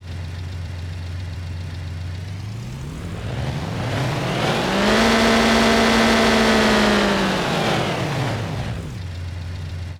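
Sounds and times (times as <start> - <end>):
engine running in a city: 0.1 - 9.9
city ambience: 2.0 - 9.1.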